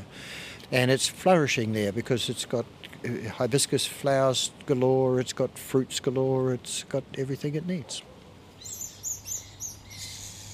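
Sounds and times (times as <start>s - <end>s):
speech: 0.7s - 8.1s
Kura lorikeets and kākerōri flycatchers calling on the island of Atu: 7.8s - 10.5s.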